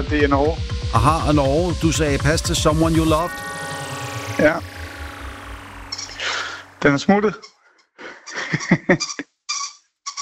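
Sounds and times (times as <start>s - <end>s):
speech: 0.0s - 3.5s, 4.4s - 4.7s, 6.8s - 7.5s, 8.5s - 9.3s
laughter: 8.0s - 9.2s
squeaky toy squeezed by a small dog: 9.0s - 10.2s.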